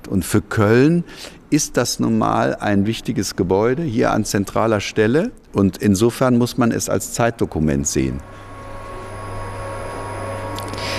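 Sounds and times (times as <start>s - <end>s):
speech: 0.1s - 8.5s
vacuum cleaner running: 8.2s - 10.9s.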